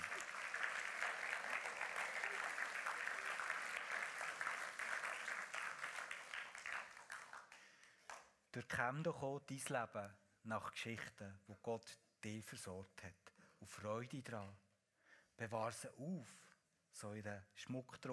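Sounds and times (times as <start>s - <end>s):
audience applauding with dense overlapping clapping: 0.0s - 7.6s
speech: 8.5s - 14.6s, 15.4s - 18.1s.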